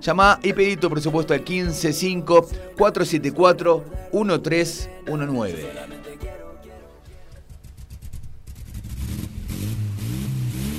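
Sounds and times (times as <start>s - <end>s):
speech: 0.0s - 6.0s
car engine starting and revving: 7.6s - 10.7s.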